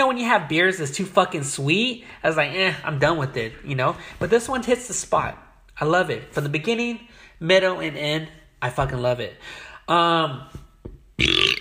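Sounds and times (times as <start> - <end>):
speech: 0.1 - 10.6, 11.2 - 11.6
loud low burp: 11.2 - 11.6.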